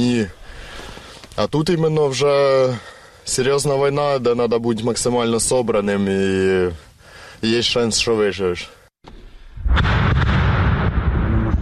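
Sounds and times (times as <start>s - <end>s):
speech: 0.0s - 0.4s, 1.4s - 8.8s
loud explosion with rolling rumble echoing across open terrain: 9.5s - 11.6s
sharp blasts: 9.6s - 11.6s.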